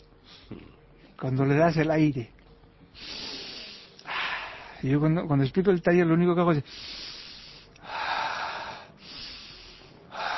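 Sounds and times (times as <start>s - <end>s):
speech: 1.2s - 2.4s, 4.8s - 7.0s
person breathing theatrically, imitating a puppet's breathing: 3.0s - 4.8s, 6.6s - 10.3s.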